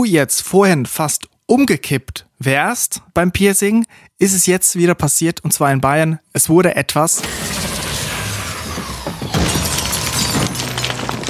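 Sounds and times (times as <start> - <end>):
speech: 0.0 - 8.0
continuous rattling and breaking noise: 7.2 - 11.2
goods tipping over and spilling with a clattering crash: 7.2 - 11.2.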